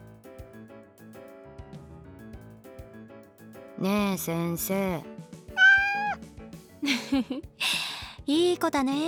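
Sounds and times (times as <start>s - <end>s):
speech: 3.8s - 5.2s, 6.8s - 9.0s
cat meowing: 5.6s - 6.2s.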